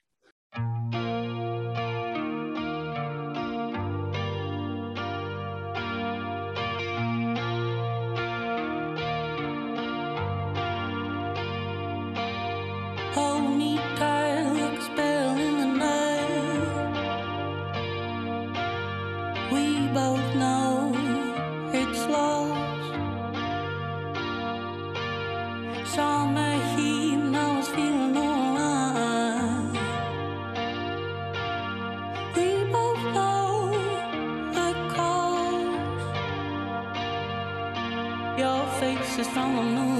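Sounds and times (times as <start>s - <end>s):
pop song with shimmering instrumental and repeating bass line: 0.9s - 39.9s.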